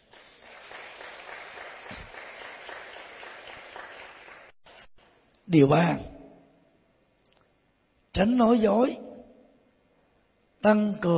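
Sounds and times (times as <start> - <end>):
audience crowd applauding with many hands clapping: 0.0 - 4.9
speech: 5.5 - 6.1, 8.2 - 9.0, 10.6 - 11.1.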